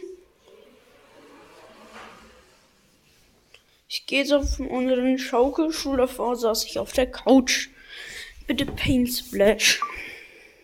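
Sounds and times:
soft shuffling and movement: 2.4s - 7.2s, 8.2s - 9.8s
speech: 3.9s - 7.7s, 8.5s - 10.1s.

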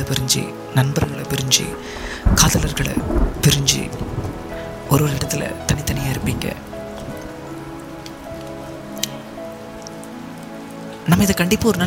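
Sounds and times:
speech: 0.0s - 6.7s, 11.1s - 11.8s
rain pattering on a surface: 1.0s - 11.8s.

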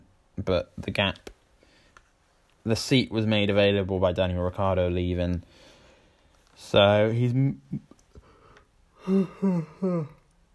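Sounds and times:
speech: 0.4s - 1.3s, 2.6s - 5.7s, 6.6s - 7.9s, 9.0s - 10.2s
person yawning: 9.0s - 10.3s.

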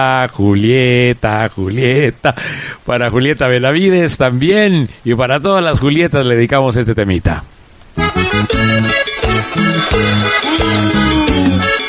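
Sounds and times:
speech: 0.0s - 7.5s, 8.3s - 11.8s
loud electronic phone ringtone melody: 8.0s - 11.8s.

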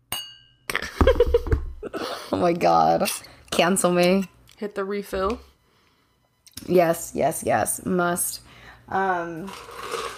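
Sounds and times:
glasses clinking in a toast: 0.1s - 0.7s
speech: 2.3s - 5.5s, 6.7s - 9.9s.

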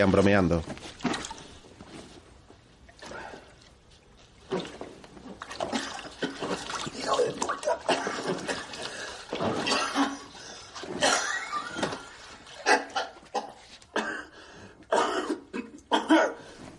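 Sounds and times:
speech: 0.0s - 0.9s
blood spat into a bathtub: 0.8s - 16.7s
harsh coughing fit: 7.0s - 16.6s.

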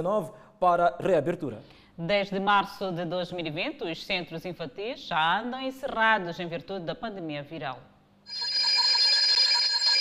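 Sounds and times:
speech: 0.0s - 8.5s
alarm clock ringing with shrill metallic bell: 8.3s - 10.0s.

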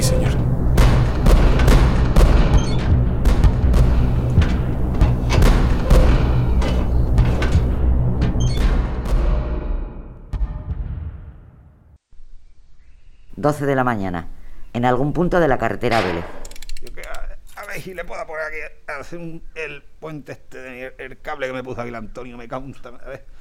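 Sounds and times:
low rumble: 0.0s - 11.4s
gunshots in a radio war drama: 0.7s - 7.2s
speech: 13.4s - 17.0s, 17.8s - 23.3s.

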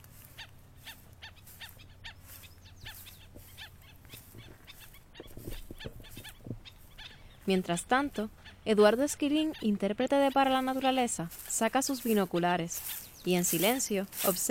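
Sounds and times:
low steady hum: 0.0s - 14.4s
chorus of birds chirping and whistling outdoors in the Medio Mundo y Dahuao protected natural area: 0.2s - 14.4s
speech: 7.5s - 14.4s.

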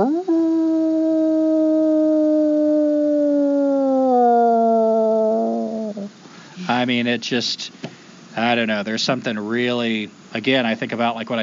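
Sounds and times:
single wolf howling: 0.0s - 6.1s
speech: 6.7s - 7.8s, 8.4s - 11.4s.

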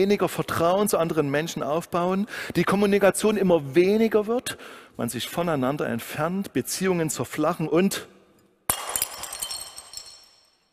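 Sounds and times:
speech: 0.0s - 8.1s
glass breaking: 8.7s - 10.7s
glass shards tinkling: 8.7s - 10.7s.

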